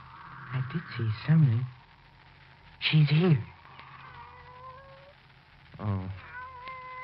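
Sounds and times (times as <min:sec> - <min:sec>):
steady low hum: 0:00.0 - 0:07.0
speech: 0:00.5 - 0:01.8, 0:02.8 - 0:03.5, 0:05.8 - 0:06.2
pet cat meowing: 0:03.8 - 0:05.2, 0:06.1 - 0:07.0.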